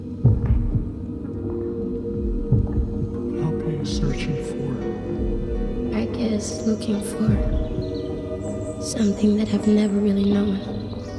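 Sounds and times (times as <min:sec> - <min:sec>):
slow heartbeat thumps with soft double pulse: 0:00.0 - 0:08.1
steady low hum: 0:00.0 - 0:11.1
speech: 0:03.8 - 0:04.4, 0:06.4 - 0:07.6, 0:08.8 - 0:10.8.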